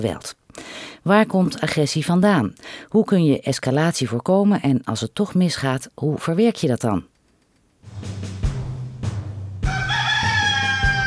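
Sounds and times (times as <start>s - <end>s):
speech: 0.0s - 0.4s, 1.0s - 7.1s
rooster crowing: 9.6s - 11.0s.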